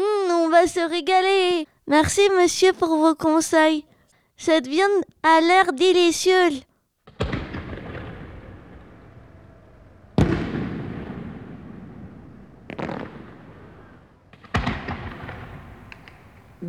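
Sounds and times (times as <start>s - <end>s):
speech: 0.6s - 6.7s
fireworks exploding: 7.0s - 16.6s.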